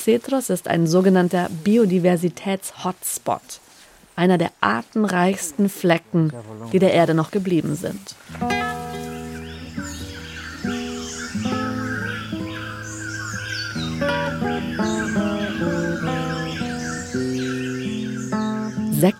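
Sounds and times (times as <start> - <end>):
speech: 0.0 - 3.6, 4.2 - 8.7, 19.0 - 19.1
birds calling and squawking around a wooden forest hut at the Los Cedros reserve station: 5.2 - 19.1.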